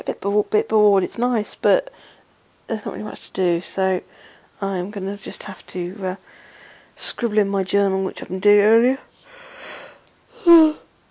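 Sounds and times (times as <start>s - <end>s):
speech: 0.1s - 2.1s, 2.7s - 6.4s, 7.0s - 9.1s
person yawning: 10.4s - 10.8s.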